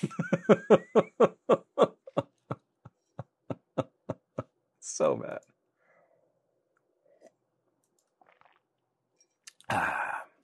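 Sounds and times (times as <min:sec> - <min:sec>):
speech: 0:00.0 - 0:01.1
laughter: 0:00.0 - 0:04.5
faint wet mouth clicks: 0:09.4 - 0:09.7.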